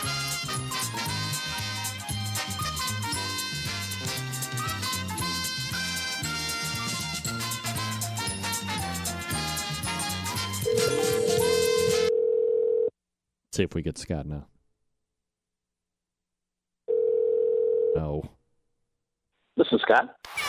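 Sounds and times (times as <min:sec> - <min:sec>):
busy musical passage: 0:00.2 - 0:12.1
steady loud telephone tone: 0:10.6 - 0:12.9, 0:16.9 - 0:18.0
speech: 0:13.6 - 0:14.6, 0:18.0 - 0:18.4, 0:19.9 - 0:20.3.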